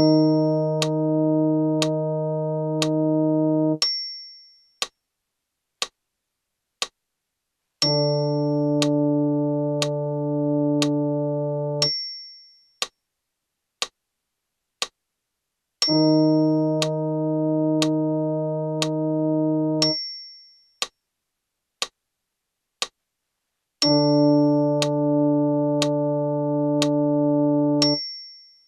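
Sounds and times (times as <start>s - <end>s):
brass in Eb: 0.1s - 3.8s, 7.9s - 11.8s, 15.9s - 19.8s, 24.2s - 27.9s.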